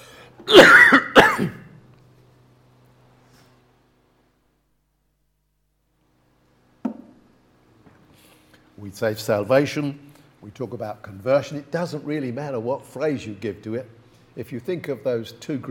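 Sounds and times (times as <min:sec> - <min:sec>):
person coughing: 0:00.4 - 0:01.8
throat clearing: 0:00.4 - 0:01.8
speech: 0:08.8 - 0:15.6.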